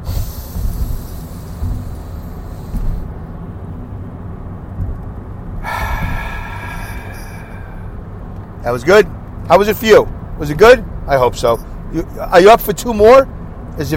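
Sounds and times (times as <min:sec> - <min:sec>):
deep breath in through the nose and out through the mouth: 0:00.0 - 0:03.1, 0:05.6 - 0:08.3
speech: 0:08.7 - 0:13.9.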